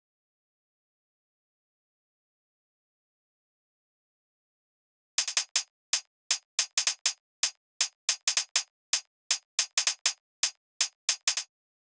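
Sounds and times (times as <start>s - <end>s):
hi-hat outro at 160 bpm: 5.2s - 11.5s.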